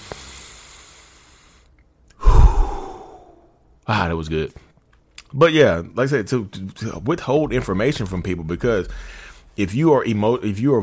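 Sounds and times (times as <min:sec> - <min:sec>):
person taking a deep breath: 0:02.2 - 0:03.5
speech: 0:03.9 - 0:04.7, 0:05.3 - 0:10.8.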